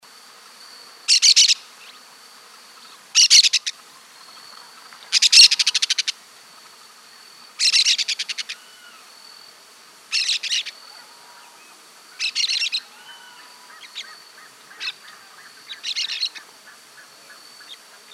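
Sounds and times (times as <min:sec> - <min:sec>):
yellow-chevroned parakeet Brotogeris chiriri calling: 0:01.1 - 0:01.6, 0:03.2 - 0:03.8, 0:05.1 - 0:06.2, 0:07.6 - 0:09.0, 0:10.1 - 0:16.4.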